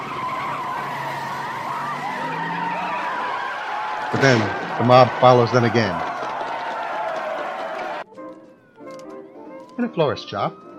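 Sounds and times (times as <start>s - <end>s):
police car tires screeching as it speeds away: 0.0s - 8.0s
speech: 4.1s - 6.1s, 9.8s - 10.6s.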